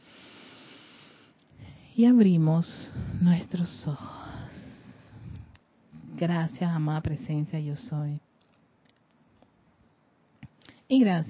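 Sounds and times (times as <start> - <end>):
deep breath in and out during a meditation: 0.0 - 2.0, 2.8 - 3.2, 4.0 - 6.2
speech: 2.0 - 4.2, 6.2 - 8.3, 10.9 - 11.2.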